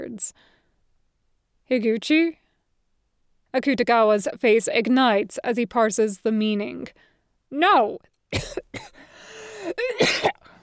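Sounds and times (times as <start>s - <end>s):
speech: 0.2s - 0.6s, 1.7s - 2.4s, 3.5s - 10.5s
person coughing in short harsh bursts: 8.4s - 9.0s, 9.6s - 10.6s.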